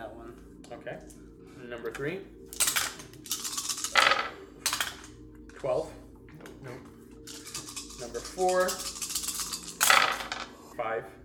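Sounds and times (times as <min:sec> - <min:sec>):
speech: 0:00.7 - 0:03.3, 0:05.6 - 0:06.0, 0:06.6 - 0:06.9, 0:08.1 - 0:09.0, 0:10.8 - 0:11.2
dice clattering and tumbling across a hard tabletop: 0:02.6 - 0:05.0, 0:07.3 - 0:10.5.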